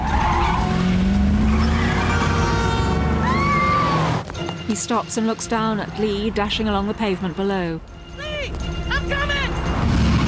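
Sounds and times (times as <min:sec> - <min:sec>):
loud steady car engine roar: 0:00.0 - 0:04.2, 0:09.7 - 0:10.2
car tyres screeching during a violent U-turn at the top of a slip road: 0:00.0 - 0:04.4
speech: 0:04.7 - 0:09.2.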